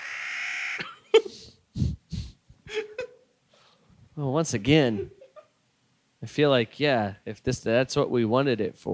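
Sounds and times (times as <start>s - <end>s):
crow cawing: 0.0s - 0.9s
speech: 0.8s - 1.4s, 4.2s - 5.2s, 6.2s - 8.9s.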